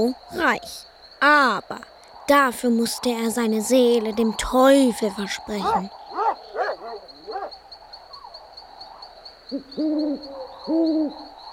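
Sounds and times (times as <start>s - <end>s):
speech: 0.0s - 6.0s, 9.5s - 11.3s
owl hooting: 5.4s - 11.5s.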